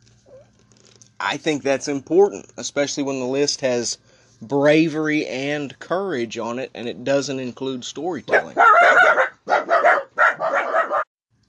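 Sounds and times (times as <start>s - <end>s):
speech: 1.2s - 9.8s
dog barking: 8.3s - 11.1s.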